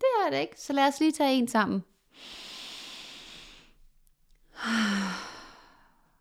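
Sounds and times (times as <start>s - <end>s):
speech: 0.3s - 2.4s
deep breath drawn slowly down into the belly: 2.1s - 3.8s, 4.5s - 6.1s
louder longer exhale like a sigh: 2.2s - 3.8s, 4.6s - 6.1s.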